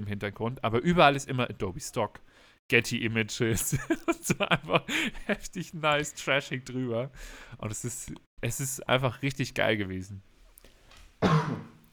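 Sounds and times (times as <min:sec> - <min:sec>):
speech: 0:00.0 - 0:10.3
laughter: 0:03.5 - 0:05.7
single harsh cough: 0:11.2 - 0:11.8.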